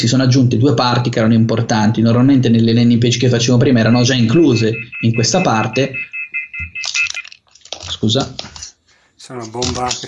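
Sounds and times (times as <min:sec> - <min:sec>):
speech: 0:00.0 - 0:06.1, 0:08.0 - 0:08.5, 0:09.3 - 0:10.0
phone ringing with high-pitched electronic beeps and trilling tones: 0:03.6 - 0:07.4.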